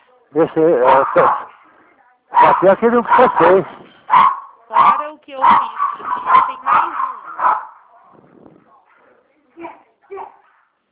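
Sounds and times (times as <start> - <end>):
faint murmur: 0.0 - 10.9
speech: 0.3 - 1.4, 2.4 - 4.2
dog barks as if over a phone line: 0.7 - 1.6, 2.3 - 8.2.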